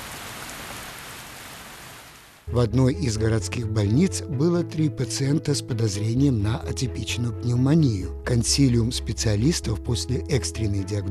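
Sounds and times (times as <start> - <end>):
heavy downpour of rain: 0.0 - 2.5
speech: 2.5 - 11.0.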